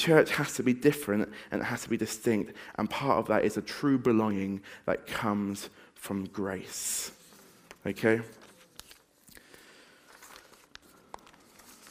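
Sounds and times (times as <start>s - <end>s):
speech: 0.0s - 7.2s, 7.8s - 8.4s
printed paper sheets with slides rustling and crinkling: 7.1s - 9.4s, 10.0s - 11.9s.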